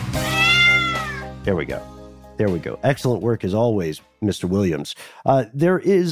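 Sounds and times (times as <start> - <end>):
cat meow sound effect: 0.2 - 1.3
speech: 1.5 - 6.0.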